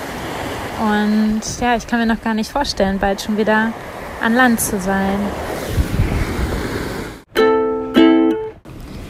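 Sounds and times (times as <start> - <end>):
ocean waves splashing against a sailing boat: 0.0 - 7.3
wind: 0.0 - 9.0
speech: 0.8 - 5.5.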